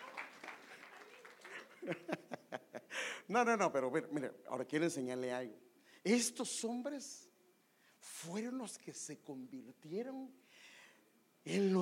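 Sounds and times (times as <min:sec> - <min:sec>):
crowd applauding: 0:00.0 - 0:02.1
laughter: 0:01.4 - 0:02.9
speech: 0:01.8 - 0:02.4, 0:03.3 - 0:07.3, 0:08.1 - 0:10.7, 0:11.4 - 0:11.8.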